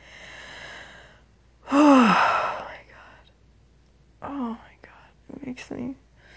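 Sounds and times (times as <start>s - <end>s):
person breathing heavily while body jumps and spasms: 0.0s - 3.2s
loud breathy exhalations with strained moan-like voiced edge: 1.7s - 2.7s
speech: 5.6s - 6.1s.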